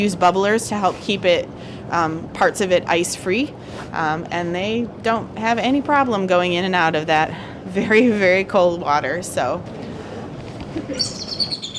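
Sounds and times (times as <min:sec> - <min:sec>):
speech: 0:00.0 - 0:09.8, 0:10.8 - 0:11.7
bald eagle calling at a zoo in cold snowy weather: 0:10.9 - 0:11.7.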